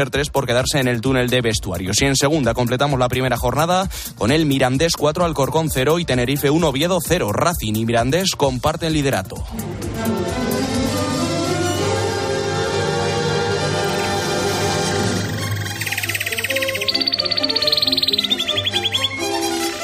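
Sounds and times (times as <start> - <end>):
speech: 0.0 - 10.4
music: 0.0 - 19.8
bird trill: 13.8 - 19.6.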